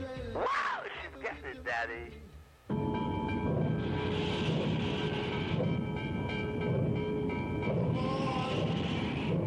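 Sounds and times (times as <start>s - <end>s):
speech: 0.4s - 0.7s, 1.3s - 2.4s
train rolling on rails: 2.8s - 9.4s.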